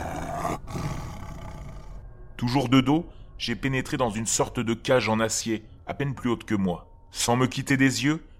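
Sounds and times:
tiger roaring: 0.0s - 2.0s
speech: 2.4s - 8.3s.

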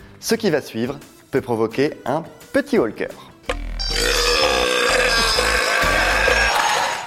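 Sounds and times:
speech: 0.2s - 3.3s
British man burping loudly: 3.9s - 7.0s.

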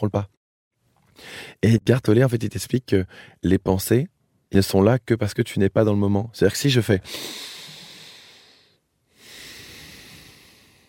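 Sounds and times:
speech: 0.0s - 0.4s, 1.2s - 7.5s
person breathing slowly and deeply: 1.1s - 1.6s, 3.1s - 3.4s, 7.0s - 10.8s.

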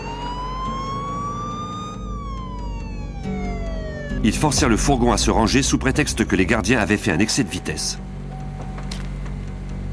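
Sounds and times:
fake police car siren wailing: 0.0s - 6.3s
low rumble of engine and road noise: 0.0s - 9.9s
speech: 4.2s - 8.1s.

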